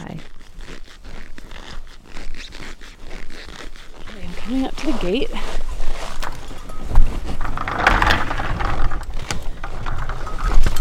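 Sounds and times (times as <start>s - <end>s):
rustle of reindeer herd milling: 0.0s - 10.8s
speech: 4.5s - 5.6s
bells worn around the necks of reindeer in a herd clanking: 6.4s - 7.3s, 9.9s - 10.8s.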